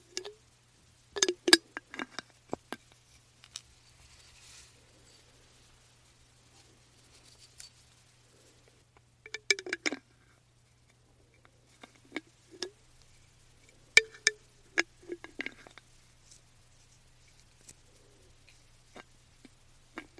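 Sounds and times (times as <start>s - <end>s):
faint low hum: 0.0s - 20.1s
person tapping and twisting a glass jar lid: 1.2s - 1.6s, 9.3s - 10.0s, 14.0s - 14.4s.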